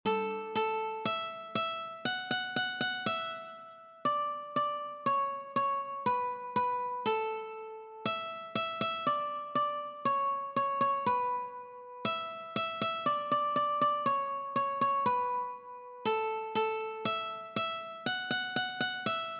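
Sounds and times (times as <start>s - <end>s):
nursery rhyme melody on one string: 0.0s - 19.3s.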